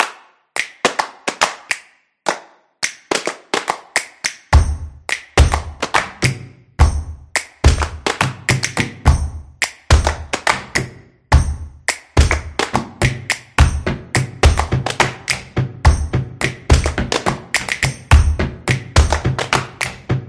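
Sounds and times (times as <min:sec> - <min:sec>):
energetic claps as street percussion: 0:00.0 - 0:20.2.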